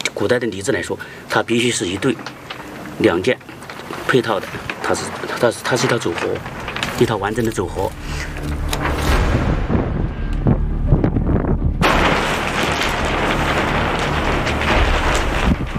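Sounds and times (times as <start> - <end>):
speech: 0.2 - 3.4, 4.1 - 8.7
strong wind gust at an archaeological dig site in March: 6.5 - 15.7.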